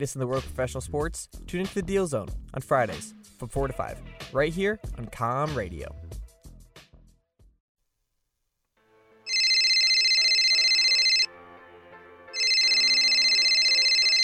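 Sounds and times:
speech: 0.0 - 6.1
telephone ringing with bright electronic trills: 9.3 - 11.3, 12.4 - 14.2.

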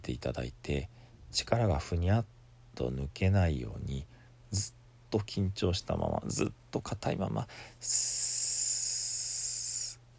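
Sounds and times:
speech: 0.0 - 8.4
person hissing sss during an abdominal breathing exercise: 7.5 - 10.0.

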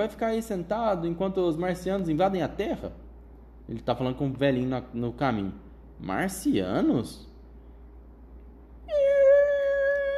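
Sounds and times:
speech: 0.0 - 3.0, 3.7 - 7.3
voice imitating squealing bicycle brakes: 8.9 - 10.1.

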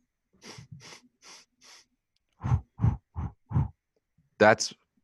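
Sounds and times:
quick forceful sniffs through the nose in a breathing exercise: 0.4 - 1.9
speech: 4.4 - 4.8.

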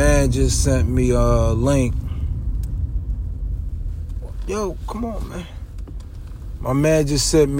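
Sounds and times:
car driving on the road heard from inside the cabin: 0.0 - 7.5
speech: 0.2 - 2.1, 4.5 - 5.6, 6.6 - 7.5.

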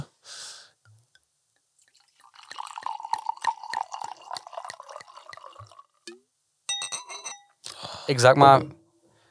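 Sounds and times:
wine pouring into a glass: 1.8 - 6.2
bright glass clinks: 6.7 - 7.6
speech: 8.1 - 8.8.

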